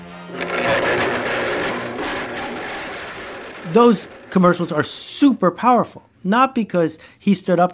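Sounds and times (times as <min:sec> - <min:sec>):
blender grinding cubic zirconia imitation diamonds: 0:00.0 - 0:05.3
speech: 0:03.7 - 0:07.7.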